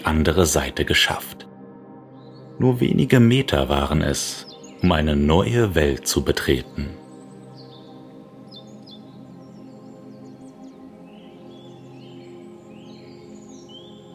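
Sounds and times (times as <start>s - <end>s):
speech: 0.0s - 1.4s, 2.6s - 7.0s
birds chirping and trilling: 0.0s - 14.1s.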